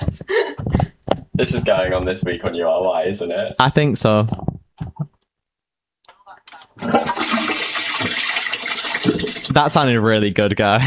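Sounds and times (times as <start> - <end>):
speech: 1.4 - 4.5, 9.6 - 10.8
toilet flushing: 6.8 - 9.8.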